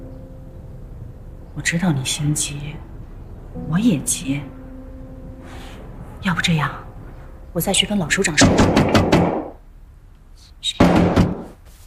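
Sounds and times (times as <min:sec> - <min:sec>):
speech: 0:01.6 - 0:02.9, 0:03.6 - 0:04.6, 0:06.2 - 0:06.8, 0:07.6 - 0:09.3
firm knocking on a wooden door: 0:08.4 - 0:09.6, 0:10.8 - 0:11.5.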